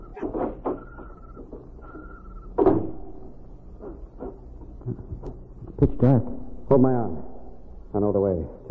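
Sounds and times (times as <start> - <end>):
small silo side door clunks and rattles: 0.0 - 3.4
thin squeaky creak of a small silo side door: 0.0 - 5.8
louder thud of a small silo side door: 2.6 - 3.4
speech: 6.0 - 7.3, 7.9 - 8.6.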